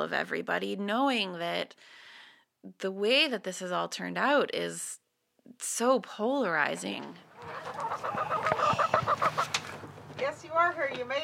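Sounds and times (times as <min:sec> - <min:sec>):
speech: 0:00.0 - 0:08.8, 0:10.2 - 0:11.2
chickens clucking: 0:06.8 - 0:10.1
chicken squawk: 0:07.3 - 0:09.8.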